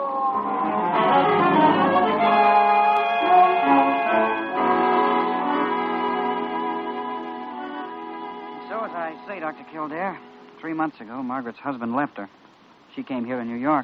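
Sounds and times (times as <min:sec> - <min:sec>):
vehicle siren wailing: 0:00.1 - 0:06.9
speech: 0:09.5 - 0:13.8.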